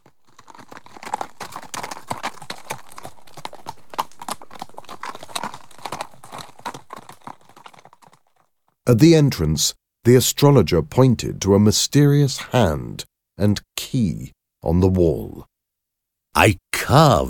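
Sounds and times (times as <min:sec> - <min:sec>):
ridden white horses' hooves clip-clopping on a hard surface: 0:00.0 - 0:08.8
speech: 0:08.9 - 0:15.5, 0:16.4 - 0:17.2.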